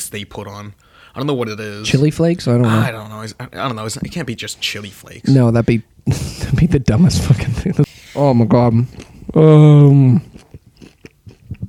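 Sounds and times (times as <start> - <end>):
speech: 0.1 - 10.3
loud sustained hummed vocal tone: 2.6 - 3.0
chewing and crunchy biting of food: 8.8 - 11.6.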